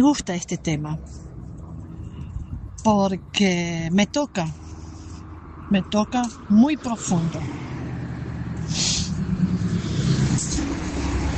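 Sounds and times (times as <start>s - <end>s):
speech: 0.0s - 1.3s, 2.8s - 4.6s, 5.7s - 7.7s
street traffic rumble of cars and trucks passing on a sunny day: 0.0s - 11.3s
sharp hissing bursts: 8.6s - 9.2s.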